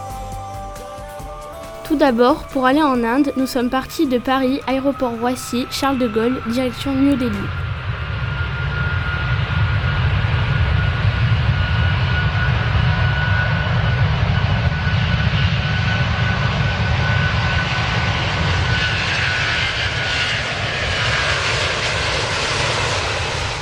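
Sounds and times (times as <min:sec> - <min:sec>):
speech: 0:02.0 - 0:07.7
Airbus A350-900 airliner engines in flight: 0:02.8 - 0:23.5.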